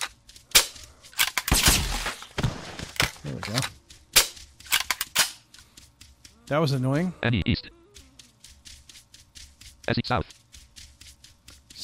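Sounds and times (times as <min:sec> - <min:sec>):
gunshots from shooting a zombie in a video game: 0:00.5 - 0:02.9
speech: 0:03.3 - 0:03.8, 0:06.5 - 0:07.8, 0:09.9 - 0:10.4.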